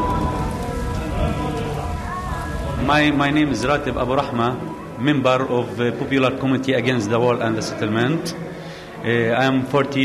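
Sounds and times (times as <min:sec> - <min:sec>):
rain and hail striking a hard surface: 0:00.0 - 0:04.7
speech: 0:02.9 - 0:08.4, 0:09.0 - 0:10.0.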